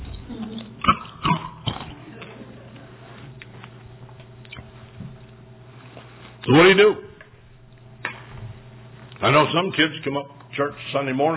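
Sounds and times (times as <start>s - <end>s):
faint steady hum: 0.0s - 11.3s
someone chewing a cough drop: 0.3s - 6.4s
speech: 6.5s - 7.0s, 9.2s - 11.3s.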